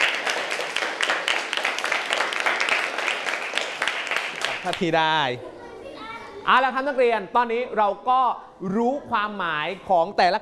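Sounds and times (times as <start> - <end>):
students clapping: 0.0 - 5.2
speech: 4.6 - 5.5, 6.4 - 10.4.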